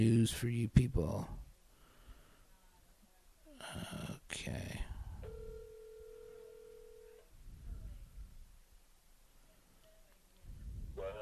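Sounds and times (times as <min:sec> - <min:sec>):
speech: 0:00.0 - 0:01.4, 0:03.7 - 0:04.9
steady electronic telephone ringing tone: 0:05.2 - 0:07.2.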